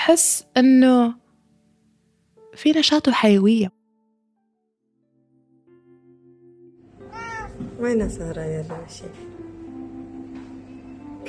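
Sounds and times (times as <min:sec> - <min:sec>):
speech: 0:00.1 - 0:01.2, 0:02.6 - 0:03.8, 0:07.8 - 0:09.3
cat meowing: 0:07.0 - 0:07.9.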